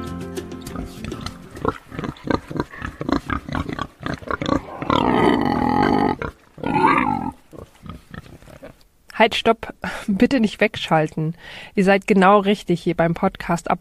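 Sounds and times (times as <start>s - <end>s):
pigs grunting and squealing: 0.6s - 8.8s
speech: 9.2s - 13.7s.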